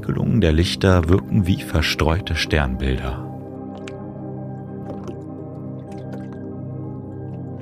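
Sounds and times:
speech: 0:00.0 - 0:03.3
water lapping and gurgling: 0:03.4 - 0:07.5.

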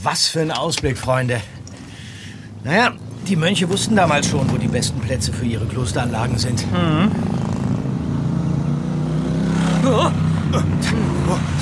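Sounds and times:
speech: 0:00.0 - 0:01.6, 0:02.6 - 0:07.5, 0:09.9 - 0:11.6
motorcycles speeding past a car: 0:02.4 - 0:11.6.

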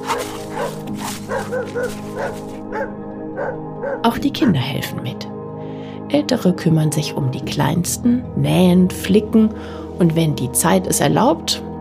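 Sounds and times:
dogs' high whining yelps: 0:00.0 - 0:04.0
several dogs barking and yipping excitedly: 0:00.0 - 0:04.6
speech: 0:04.1 - 0:05.4, 0:06.1 - 0:11.7.

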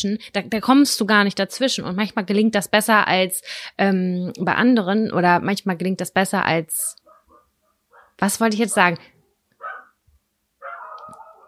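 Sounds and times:
speech: 0:00.0 - 0:07.0, 0:08.2 - 0:09.1
dog barking: 0:07.0 - 0:08.2, 0:09.6 - 0:10.0, 0:10.6 - 0:11.4.

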